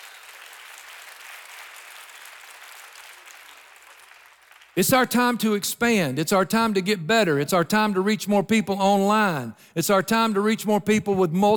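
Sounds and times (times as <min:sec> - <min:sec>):
large church audience applauding: 0:00.0 - 0:04.8
speech: 0:04.8 - 0:11.5.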